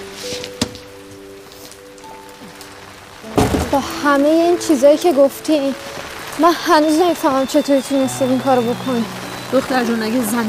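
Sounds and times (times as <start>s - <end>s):
steady rain pattering softly: 0.0s - 10.4s
scattered drips: 0.6s - 10.4s
sharp splashes or knocks: 3.2s - 4.0s
speech: 3.7s - 10.4s.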